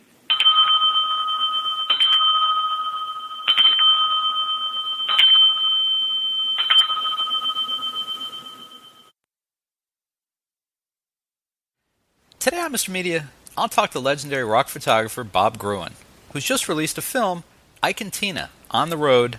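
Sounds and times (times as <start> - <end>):
small bell dinging: 0.3 - 9.1
speech: 12.5 - 19.3.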